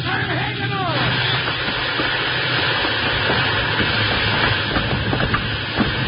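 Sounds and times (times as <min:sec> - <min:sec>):
steam locomotive slowing down running full steam in reverse: 0:00.0 - 0:06.0.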